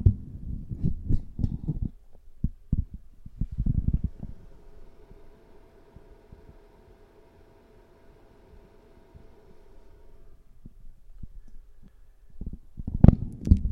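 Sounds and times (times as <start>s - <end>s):
steady low hum: 0.0s - 13.0s
microphone being detached from its mount and handled inside an open wardrobe: 0.1s - 5.0s.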